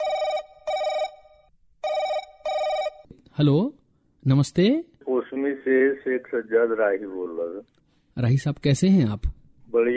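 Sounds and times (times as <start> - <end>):
telephone ringing for an incoming listener call: 0.0 - 3.1
speech: 3.4 - 9.9.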